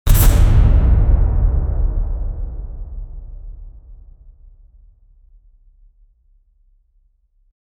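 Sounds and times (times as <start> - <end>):
cinematic trailer impact: 0.1 - 5.0.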